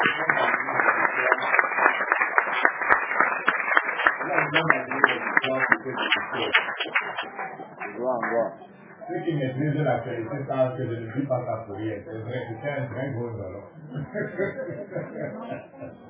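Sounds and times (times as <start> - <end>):
laughter: 0.0 - 2.0, 4.0 - 8.3, 9.1 - 16.0
crowd clapping together: 0.0 - 9.3
speech: 8.0 - 16.0.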